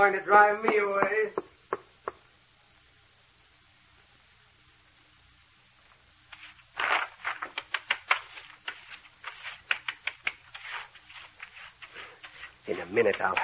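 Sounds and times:
speech: 0.0 - 1.5, 12.9 - 13.4
foot tapping on a floor: 7.3 - 13.4.

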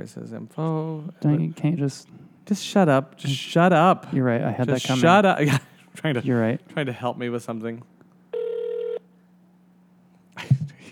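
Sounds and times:
speech: 0.0 - 7.9
phone line ringing tone: 8.3 - 9.0.

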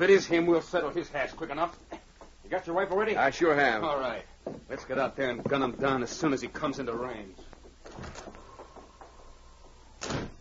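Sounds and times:
speech: 0.0 - 1.9, 2.5 - 8.4
creaks and clunks from the door being moved: 7.6 - 10.3
door slamming shut: 10.0 - 10.3.

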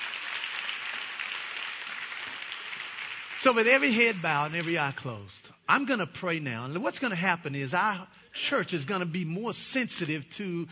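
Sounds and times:
church audience applauding: 0.0 - 5.0
speech: 3.4 - 10.7.

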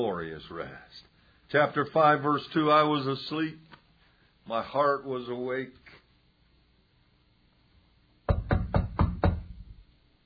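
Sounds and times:
speech: 0.0 - 3.7, 4.5 - 5.9
knocking on a door: 8.3 - 9.8.

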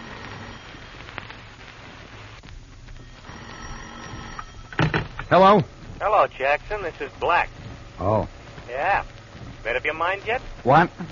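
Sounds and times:
steady hiss: 0.0 - 11.1
telephone bell ringing in an office: 3.0 - 4.9
speech: 5.3 - 11.1.

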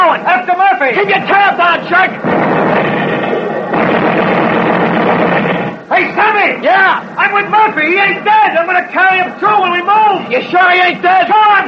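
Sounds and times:
speech: 0.8 - 2.6, 6.0 - 11.6
naval artillery barrage explosions roaring: 0.9 - 8.6.

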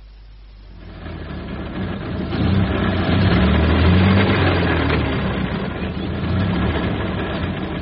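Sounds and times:
jump-started car engine with low rumbling idle: 0.0 - 7.8.

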